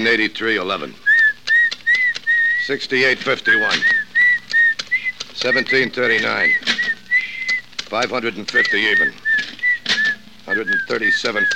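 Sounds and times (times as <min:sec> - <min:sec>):
speech: 0:00.0 - 0:01.1, 0:02.7 - 0:04.0, 0:05.4 - 0:07.0, 0:07.9 - 0:09.5, 0:10.5 - 0:11.5
thin steady human whistling: 0:01.0 - 0:07.6, 0:08.5 - 0:11.5
clattering: 0:03.2 - 0:11.5.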